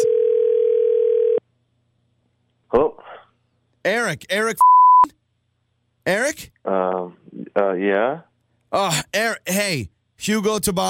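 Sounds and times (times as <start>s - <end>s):
steady single-pitched telephone tone as a call is placed: 0.0s - 1.4s
speech: 3.8s - 5.2s, 6.1s - 10.8s.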